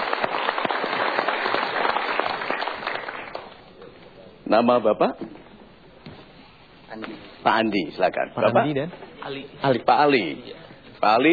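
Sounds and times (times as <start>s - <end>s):
audience applause at a motivational seminar: 0.0s - 3.6s
speech: 4.5s - 5.4s, 7.0s - 11.3s.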